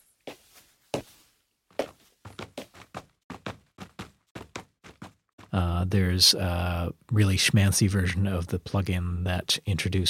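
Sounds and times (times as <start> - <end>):
shoe footsteps on a hard surface: 0.0 - 5.6
speech: 5.6 - 10.0.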